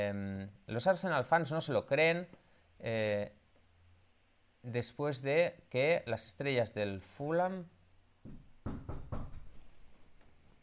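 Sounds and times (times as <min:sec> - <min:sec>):
speech: 0:00.0 - 0:03.4, 0:04.6 - 0:08.8
faint room hiss: 0:00.0 - 0:10.6
low-pitched knocking on a door: 0:08.2 - 0:09.6.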